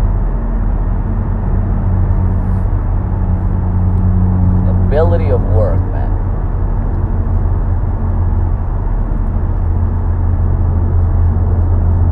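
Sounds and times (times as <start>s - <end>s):
car driving on road: 0.0s - 12.1s.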